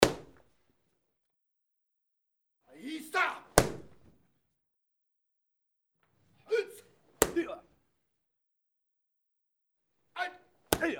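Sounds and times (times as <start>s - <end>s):
karate kicks hitting a hand pad: 0.0s - 0.4s, 3.6s - 4.2s, 7.2s - 7.6s, 10.7s - 10.9s.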